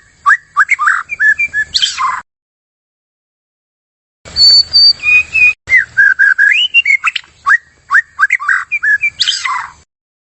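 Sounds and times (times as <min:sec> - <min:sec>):
White-rumped shama singing clear high whistles: 0:00.0 - 0:02.2, 0:04.3 - 0:09.8.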